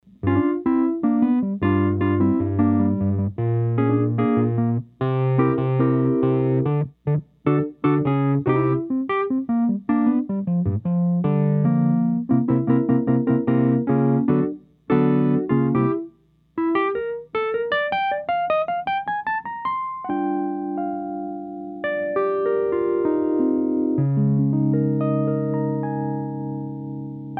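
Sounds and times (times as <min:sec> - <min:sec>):
Wurli 106T electric piano: 0:00.0 - 0:27.3.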